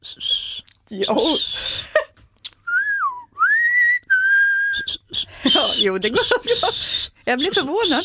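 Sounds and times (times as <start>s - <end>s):
speech: 0.0s - 0.3s, 0.9s - 1.7s, 5.8s - 8.0s
person whistling a short wavering tune: 0.0s - 1.8s, 2.6s - 8.0s.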